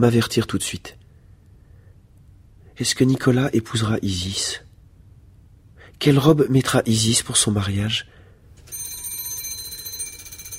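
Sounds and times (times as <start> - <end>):
speech: 0.0 - 1.0, 2.8 - 4.6, 6.0 - 8.2
electric doorbell ringing: 8.6 - 10.5.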